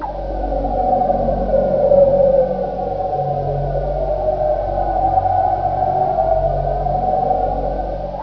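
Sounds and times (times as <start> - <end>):
alien creeper ambience: 0.0 - 8.2.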